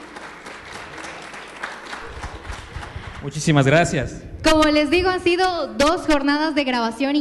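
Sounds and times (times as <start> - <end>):
audience applause: 0.0 - 3.8
speech: 3.2 - 7.2.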